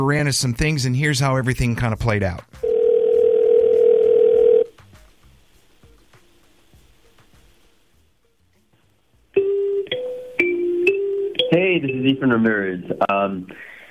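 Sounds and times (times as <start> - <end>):
speech: 0.0 - 2.6, 12.2 - 13.8
telephone ringback tone while placing a call: 2.6 - 4.7, 9.4 - 11.3.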